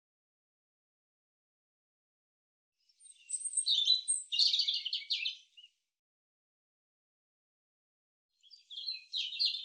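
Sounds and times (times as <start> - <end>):
European robin singing: 2.9 - 5.8, 8.4 - 9.6.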